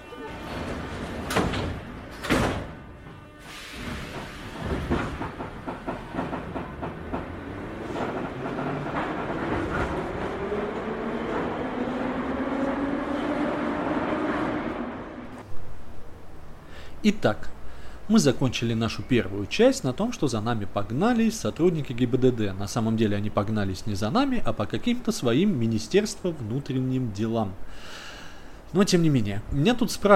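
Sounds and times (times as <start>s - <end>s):
metro train doors banging shut: 0.1s - 10.4s
metro train rattling carriages: 0.2s - 3.4s, 4.0s - 11.1s
metro train rumbling wheels: 0.3s - 15.5s
metro train door hiss: 3.4s - 4.5s
speech: 17.0s - 28.0s, 28.7s - 30.1s.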